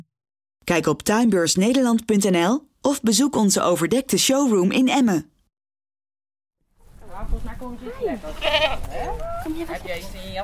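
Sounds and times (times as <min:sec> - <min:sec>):
speech: 0:00.7 - 0:05.3, 0:07.3 - 0:10.4
goats of African origin bleating at a petting farm: 0:08.2 - 0:09.3.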